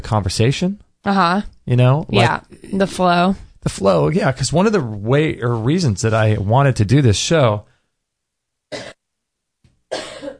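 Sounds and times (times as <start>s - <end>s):
speech: 0.1s - 7.7s
two people coughing: 8.7s - 9.0s, 9.9s - 10.3s.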